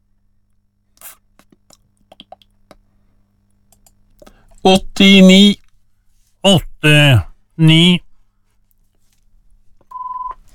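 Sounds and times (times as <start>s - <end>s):
speech: 4.6s - 5.6s, 6.4s - 8.1s
steady electronic telephone tone: 9.9s - 10.4s.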